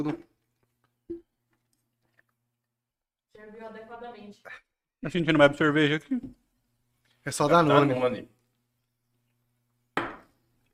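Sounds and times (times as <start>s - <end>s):
speech: 0.0s - 0.3s, 3.4s - 6.4s, 7.2s - 8.4s
person chewing food: 0.4s - 2.8s.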